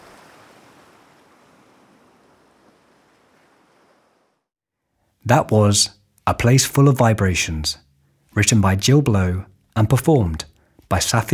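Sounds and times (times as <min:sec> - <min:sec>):
sea waves washing onto a sandy shore: 0:00.0 - 0:04.4
speech: 0:05.3 - 0:11.3.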